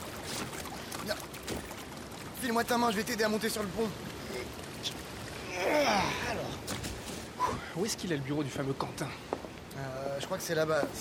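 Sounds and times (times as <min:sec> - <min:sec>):
water sloshing and lapping around a small boat arriving at another boat: 0:00.0 - 0:10.9
speech: 0:02.4 - 0:05.0, 0:05.6 - 0:06.6, 0:07.7 - 0:10.9.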